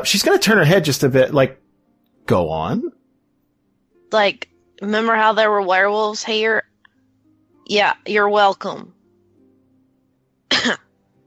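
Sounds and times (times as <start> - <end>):
speech: 0.0 - 1.6, 2.3 - 3.0, 4.1 - 6.7, 7.7 - 9.0, 10.6 - 10.8
single short pitiful-sounding cough: 10.5 - 10.8.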